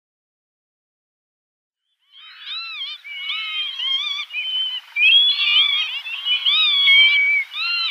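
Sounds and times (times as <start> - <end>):
Northern lapwing chorus calling: 2.0 - 7.9.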